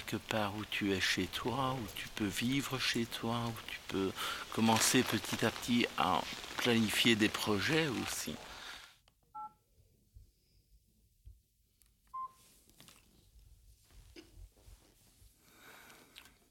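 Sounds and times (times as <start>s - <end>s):
rustling: 0.0s - 8.9s, 11.7s - 16.4s
speech: 0.1s - 8.5s
telephone keypad tones: 9.4s - 9.6s.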